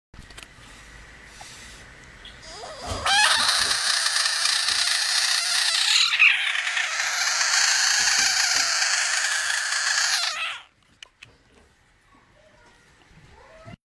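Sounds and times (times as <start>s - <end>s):
frog screaming: 2.4s - 10.7s.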